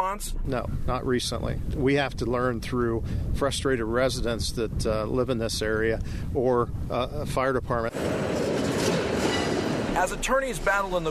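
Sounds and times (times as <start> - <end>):
speech: 0.0 - 8.4, 10.0 - 11.0
train cars rolling on rails: 7.9 - 11.0.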